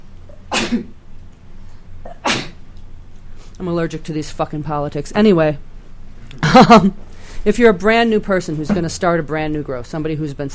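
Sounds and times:
sharp sneezes: 0.5 - 0.9, 2.1 - 2.6
speech: 0.7 - 1.0, 3.6 - 5.7, 6.5 - 10.5.

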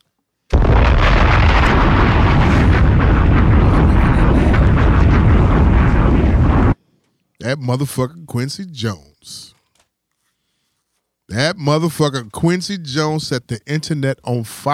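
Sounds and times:
bombs exploding: 0.5 - 6.8
speech: 7.5 - 9.6, 11.3 - 14.7.

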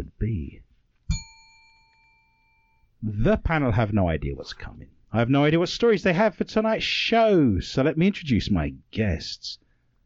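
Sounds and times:
bright bell strike used as a sound effect: 1.1 - 2.9
speech: 3.1 - 9.6.

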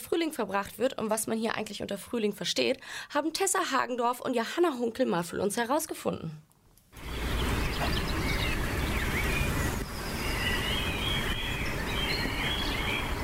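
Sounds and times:
speech: 0.2 - 7.1
birds chirping and trilling outdoors on a sunny spring day in Lingen: 7.0 - 13.2
steady wash of wind or traffic noise: 7.0 - 13.2.

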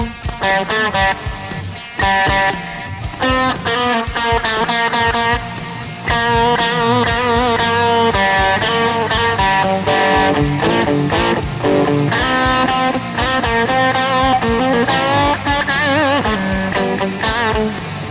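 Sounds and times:
electric slide guitar: 0.0 - 18.0
full-band accompaniment: 0.0 - 18.0.

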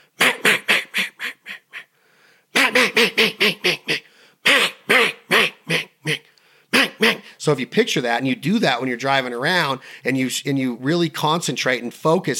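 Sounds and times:
hen mallard quacks blown on a duck call: 0.2 - 1.9, 2.6 - 7.2
speech: 2.8 - 5.1, 7.4 - 12.3.

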